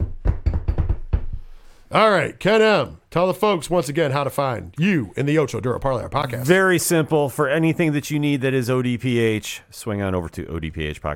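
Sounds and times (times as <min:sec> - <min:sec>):
knocking on a wooden surface for luck: 0:00.0 - 0:01.5
speech: 0:01.9 - 0:11.1.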